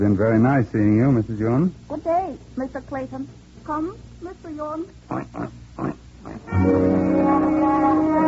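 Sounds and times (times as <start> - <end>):
speech: 0.0 - 8.1
pig grunting: 5.1 - 6.6
pig squealing: 5.1 - 6.8.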